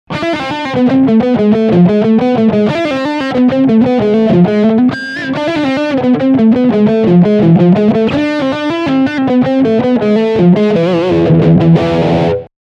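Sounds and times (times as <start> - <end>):
electric guitar lick on humbucker pickup: 0.1 - 12.5.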